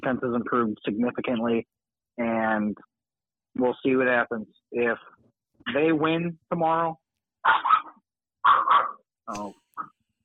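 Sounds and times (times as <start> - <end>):
speech: 0.0 - 2.9, 3.6 - 7.6, 9.3 - 9.9
pet dog barking at home: 7.4 - 9.1.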